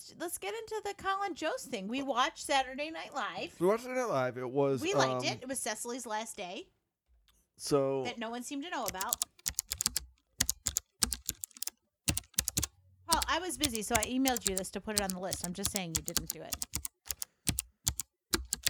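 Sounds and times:
speech: 0.2 - 6.8, 7.6 - 9.3, 13.1 - 16.8
rapid typing on a computer keyboard: 8.8 - 18.6.

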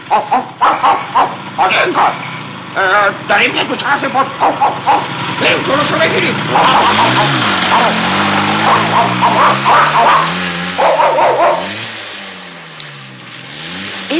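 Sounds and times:
farm dogs barking at a man on a motorbike: 0.0 - 2.5, 4.0 - 12.0
motorcycle engine revving and droning: 0.0 - 14.1
speech: 0.1 - 0.5, 1.6 - 11.7.

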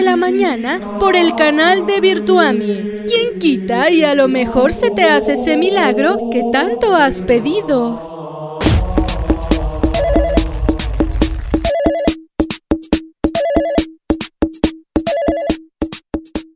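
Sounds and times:
rumbling noisy background: 0.0 - 11.7
speech: 0.1 - 8.1
cell phone ringtone with repeating electronic melody: 10.0 - 10.5, 11.6 - 12.3, 13.3 - 14.0, 15.0 - 15.7.

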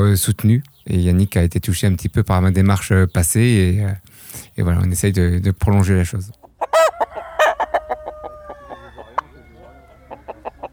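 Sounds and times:
speech: 0.0 - 6.4
chickens clucking: 0.0 - 10.7
Gaulois breed rooster crowing: 6.7 - 10.7.

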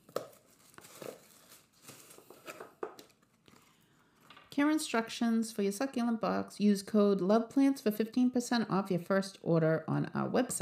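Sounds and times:
packaging tearing: 0.0 - 3.6
packaging rustling as a cardboard box of succulent plants is unboxed: 0.0 - 4.5
speech: 4.6 - 10.6.

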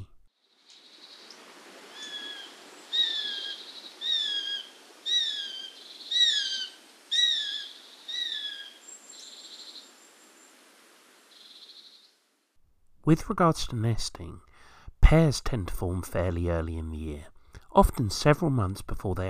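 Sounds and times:
sparrowhawk calling with high sharp ki notes: 0.8 - 9.9
speech: 13.1 - 14.5, 15.1 - 19.2.

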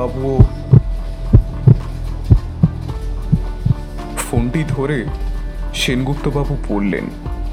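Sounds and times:
speech: 0.0 - 0.6, 4.3 - 7.4
heartbeat sound effect thumps: 0.4 - 4.8.

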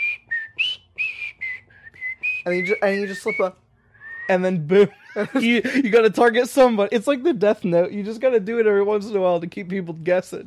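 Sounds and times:
person whistling a short tune: 0.0 - 4.4
speech: 2.4 - 3.6, 4.3 - 10.4
laughter: 4.9 - 6.2.

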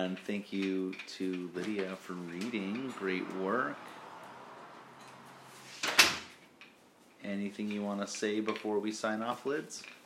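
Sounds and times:
speech: 0.0 - 4.0, 7.2 - 10.0
wooden door opening and shutting: 1.7 - 6.5.

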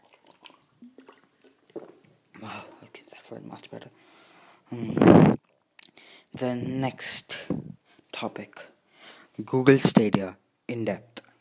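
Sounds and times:
person gulping and swallowing water: 0.0 - 3.0, 4.7 - 6.0
speech: 2.4 - 5.4, 6.4 - 7.6, 8.2 - 8.7, 9.4 - 11.1.

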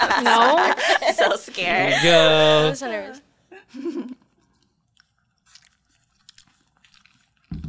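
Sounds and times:
laughter: 0.0 - 2.8, 3.6 - 4.2
speech: 0.1 - 4.1
vocal sounds: 1.6 - 2.8
chewing squishy gelatinous lychee jelly from a drink: 4.2 - 7.6
small wet mouth clicks and smacks: 4.4 - 7.6.

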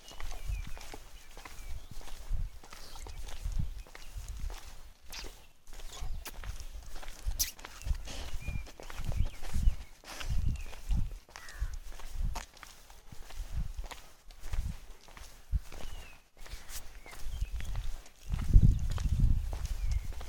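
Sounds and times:
faint birdsong: 0.0 - 12.1, 15.2 - 20.2
wind buffeting the microphone: 0.0 - 20.2
footsteps thudding on a breezy road in the Nilgiris: 7.3 - 9.2.

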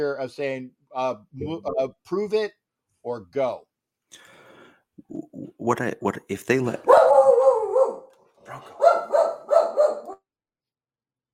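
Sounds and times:
speech: 0.0 - 4.3, 5.0 - 7.0
pet dog barking: 6.8 - 10.2.

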